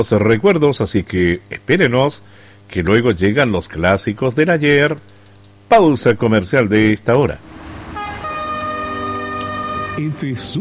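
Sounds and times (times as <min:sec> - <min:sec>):
speech: 0:00.0 - 0:05.1, 0:05.7 - 0:07.5, 0:10.0 - 0:10.5
train horn on a railway line blowing a multi-tone blast: 0:07.6 - 0:10.2.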